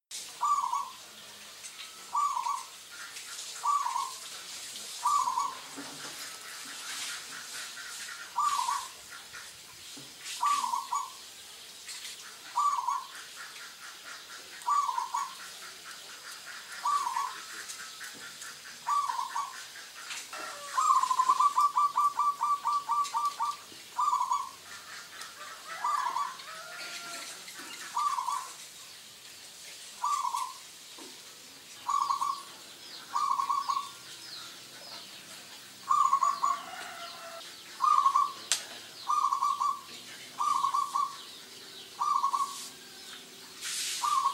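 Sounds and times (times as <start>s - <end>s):
zebra dove cooing: 0.4s - 1.0s, 2.1s - 2.8s, 3.6s - 4.2s, 5.0s - 9.4s, 10.4s - 11.2s, 12.5s - 13.3s, 14.6s - 28.6s, 30.0s - 30.6s, 31.8s - 32.5s, 33.1s - 34.0s, 35.8s - 41.3s, 42.0s - 43.0s, 44.0s - 44.3s.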